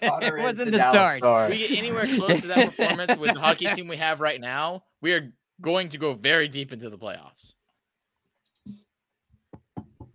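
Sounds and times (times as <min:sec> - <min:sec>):
laughter: 0:00.0 - 0:04.0
speech: 0:00.0 - 0:07.6
sharp knocks on wood: 0:09.5 - 0:10.1.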